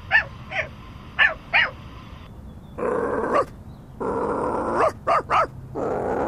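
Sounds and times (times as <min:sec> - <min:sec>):
dog barking in short sharp bursts: 0:00.1 - 0:01.8, 0:03.3 - 0:03.5, 0:04.7 - 0:05.6
dog growling low and rumbling: 0:02.8 - 0:06.2.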